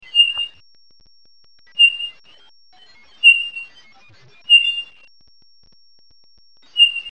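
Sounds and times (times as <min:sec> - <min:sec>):
Townsend's solitaire giving clear mellow whistled notes in northwestern California: 0:00.0 - 0:00.5, 0:01.8 - 0:02.2, 0:03.2 - 0:03.7, 0:04.5 - 0:05.1, 0:06.7 - 0:07.1.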